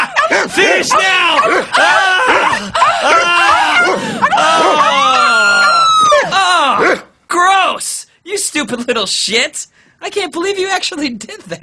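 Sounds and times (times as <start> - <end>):
several dogs barking, yipping and whining: 0.0 - 7.1
speech: 8.5 - 11.6.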